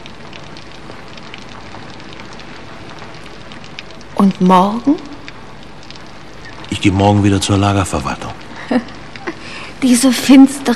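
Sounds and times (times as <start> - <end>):
steady rain falling: 0.0 - 10.7
speech: 4.2 - 5.1, 6.8 - 8.9, 9.8 - 10.7.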